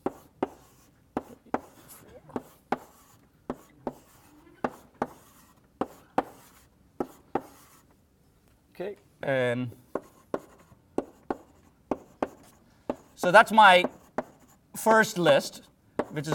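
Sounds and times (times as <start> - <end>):
diagram being drawn by hand on a board: 0.0 - 7.9, 9.9 - 14.6, 16.0 - 16.3
speech: 8.8 - 9.8, 13.2 - 14.0, 14.8 - 16.3.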